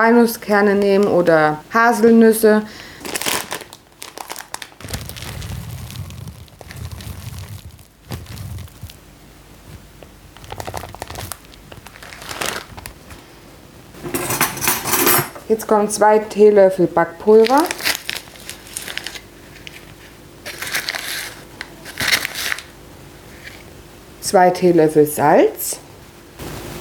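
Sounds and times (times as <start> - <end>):
speech: 0.0 - 3.2, 15.5 - 17.8, 24.3 - 25.8
crinkling packaging of sunflower seeds: 2.7 - 13.3, 17.2 - 23.7.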